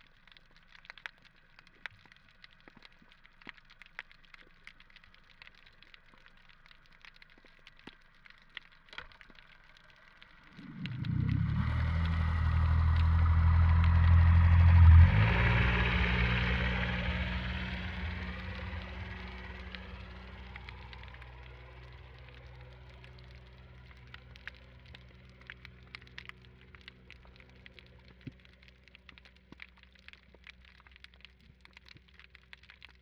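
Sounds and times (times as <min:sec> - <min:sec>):
boat passing recorded underwater in Trieste: 0:00.9 - 0:33.0.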